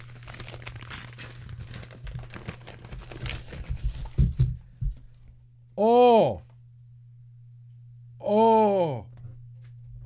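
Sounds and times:
Christmas wrapping paper tearing as a Christmas gift is opened: 0:00.0 - 0:04.2
steady low hum: 0:00.0 - 0:10.0
speech: 0:05.8 - 0:06.4.

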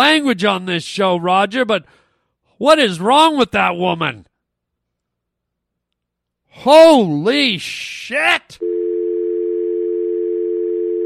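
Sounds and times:
speech: 0:00.0 - 0:02.0, 0:02.6 - 0:04.3, 0:06.5 - 0:08.7
telephone dial tone after a call ends: 0:08.6 - 0:11.0.

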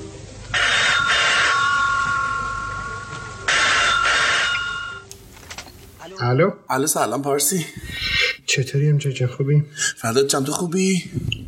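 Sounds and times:
faint hum: 0:00.0 - 0:10.4
telephone ringing: 0:00.5 - 0:05.1
speech: 0:06.2 - 0:11.4.

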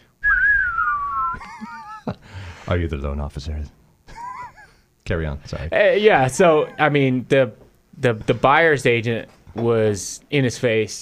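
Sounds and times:
person whistling a Western standoff melody: 0:00.2 - 0:01.4
speech: 0:02.7 - 0:03.8, 0:05.1 - 0:11.0.

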